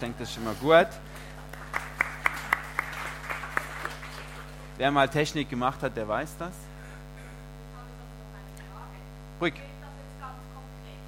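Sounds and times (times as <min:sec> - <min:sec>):
speech: 0:00.0 - 0:01.3, 0:04.8 - 0:06.7, 0:09.4 - 0:09.7
steady low electrical hum: 0:00.0 - 0:11.0
light scattered applause: 0:01.0 - 0:04.8.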